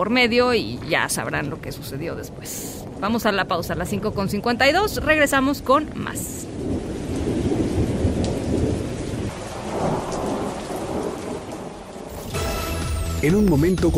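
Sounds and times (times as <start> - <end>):
speech: 0.0 - 6.5, 13.2 - 13.9
deep rolling thunder rumbling in a thunderstorm: 0.3 - 12.8
steady heavy rain hissing in a thunderstorm: 2.1 - 5.1, 6.0 - 13.9.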